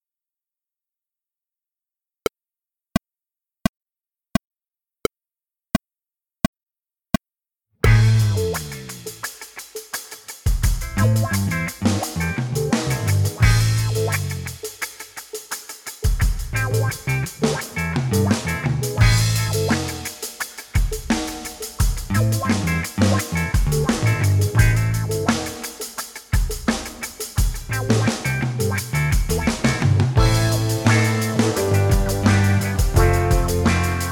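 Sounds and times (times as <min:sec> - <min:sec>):
drums: 0:07.8 - 0:34.1.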